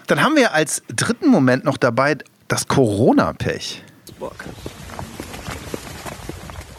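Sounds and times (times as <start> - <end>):
speech: 0.1 - 4.7
footsteps of three men walking together: 4.1 - 6.7.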